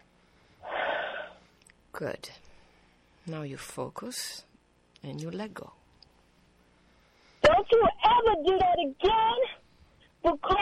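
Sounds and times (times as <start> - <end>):
deep breath: 0.1 - 1.6, 2.4 - 3.2, 6.7 - 7.4
speech: 2.0 - 2.5, 3.2 - 5.8, 7.6 - 9.6, 10.2 - 10.6.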